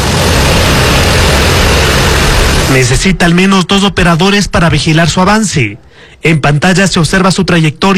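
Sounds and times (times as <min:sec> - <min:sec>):
drone flying with spinning rotor blades: 0:00.0 - 0:03.0
speech: 0:02.8 - 0:07.9.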